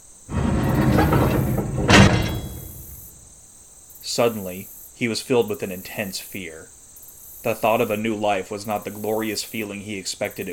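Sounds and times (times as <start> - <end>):
heavy prison door rumbling along its track: 0.3 - 3.2
speech: 4.2 - 6.8, 7.4 - 10.5.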